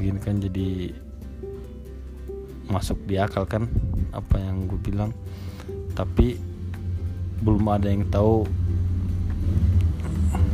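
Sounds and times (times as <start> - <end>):
speech: 0.0 - 1.5, 2.7 - 6.5, 7.4 - 8.9
motorcycle engine passing nearby: 8.5 - 10.5.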